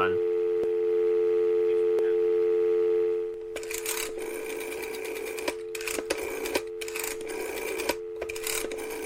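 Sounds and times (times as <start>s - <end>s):
telephone dial tone: 0.2s - 9.0s
rotary phone dial whirring and clicking: 3.4s - 9.0s.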